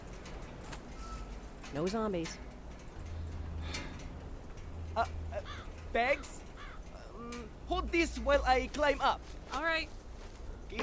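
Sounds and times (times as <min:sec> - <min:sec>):
bird call, possibly a dove-like coo: 0:00.9 - 0:01.5, 0:03.0 - 0:07.6
speech: 0:01.7 - 0:02.5, 0:05.0 - 0:06.4, 0:07.2 - 0:10.0.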